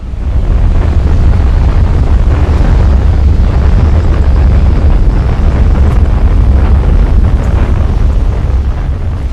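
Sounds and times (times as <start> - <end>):
roaring tornado wind: 0.0 - 9.3.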